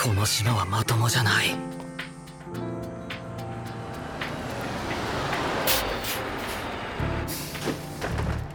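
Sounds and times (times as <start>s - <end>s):
speech: 0.1s - 1.8s
bus engine droning: 3.7s - 8.3s
bus air brakes squealing: 5.7s - 7.9s.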